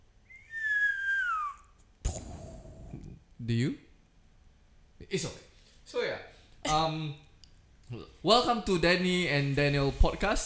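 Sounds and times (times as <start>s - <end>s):
person whistling a single note: 0.3s - 3.0s
speech: 3.4s - 3.8s, 5.1s - 7.2s, 7.9s - 10.4s.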